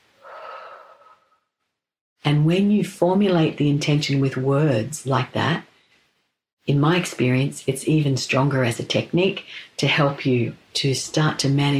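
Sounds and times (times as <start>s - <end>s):
soft airy breath in and out with faint whistling edge: 0.0s - 1.6s
speech: 2.3s - 5.7s, 6.6s - 11.7s.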